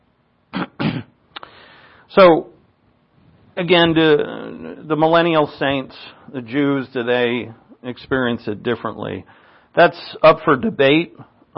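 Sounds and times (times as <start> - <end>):
person clearing throat: 0.5 - 1.2
person coughing with something caught in the throat: 0.5 - 1.2
speech: 2.1 - 2.5, 3.6 - 11.5.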